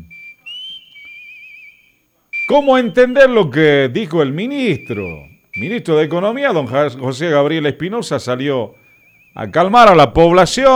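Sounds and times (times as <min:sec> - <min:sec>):
person whistling a short clear high tune: 0:00.0 - 0:03.2, 0:04.8 - 0:05.8
speech: 0:02.5 - 0:08.8, 0:09.4 - 0:10.7.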